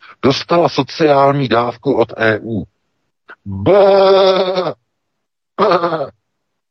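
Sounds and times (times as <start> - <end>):
speech: 0.2 - 2.7, 3.4 - 4.8, 5.6 - 6.2
sheep bleating: 3.5 - 4.8.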